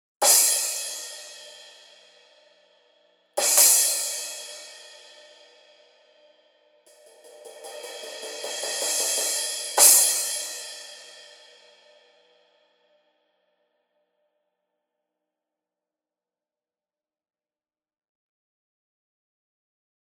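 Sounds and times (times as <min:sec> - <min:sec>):
Custom Pointer 15 crash cymbal: 0:00.2 - 0:02.8, 0:03.4 - 0:12.8.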